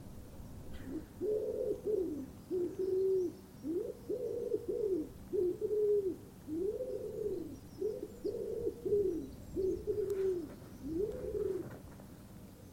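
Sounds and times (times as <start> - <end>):
faint background noise: 0.0 - 12.7
bird cooing: 0.7 - 11.8.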